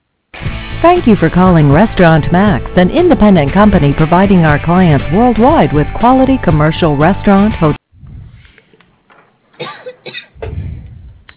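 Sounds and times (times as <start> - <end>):
speech: 0.8 - 7.8
woman coughing into a telephone line: 9.6 - 10.4.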